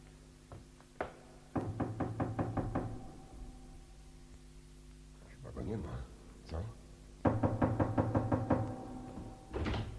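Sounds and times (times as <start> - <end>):
knocking on a wooden door: 0.5 - 3.2, 7.2 - 9.9.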